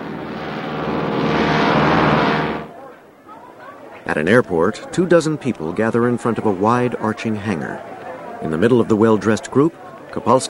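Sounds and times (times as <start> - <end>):
twin-engine plane engine drone above the clouds: 0.0 - 2.8
speech: 4.1 - 10.4.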